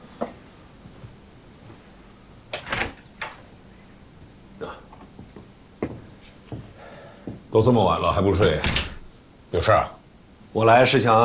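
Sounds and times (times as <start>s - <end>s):
door latch clatter: 2.5s - 3.4s
speech: 7.6s - 8.9s, 9.5s - 11.2s
door thump: 8.4s - 9.1s.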